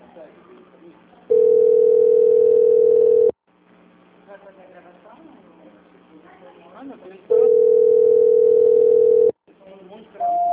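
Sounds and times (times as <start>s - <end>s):
telephone ringing tone on a call: 1.3s - 3.3s, 7.3s - 9.3s.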